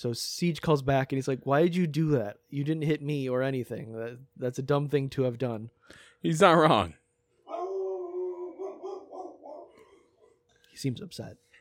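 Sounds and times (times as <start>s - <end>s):
speech: 0.0s - 7.0s, 10.8s - 11.4s
dog barking: 7.5s - 10.0s
dog yelping: 7.5s - 10.4s.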